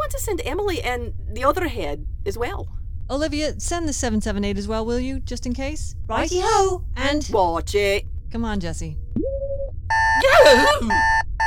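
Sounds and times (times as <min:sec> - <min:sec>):
speech: 0:00.1 - 0:09.0, 0:10.2 - 0:11.2
wristwatch alarm beeping: 0:09.3 - 0:11.4.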